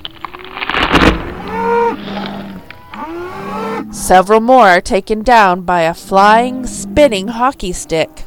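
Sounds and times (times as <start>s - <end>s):
cows mooing in drawn-out strained bellows: 0.4s - 4.4s, 5.4s - 8.2s
speech: 3.9s - 8.2s.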